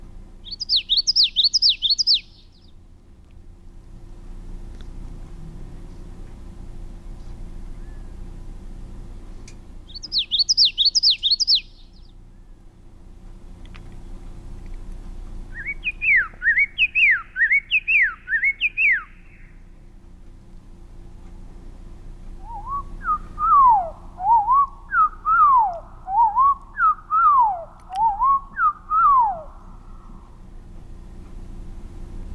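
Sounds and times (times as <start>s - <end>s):
common yellowthroat song: 0.0s - 2.9s, 7.3s - 8.5s, 9.4s - 12.8s, 13.9s - 20.0s, 21.9s - 32.1s
faint steady hum: 0.0s - 32.3s.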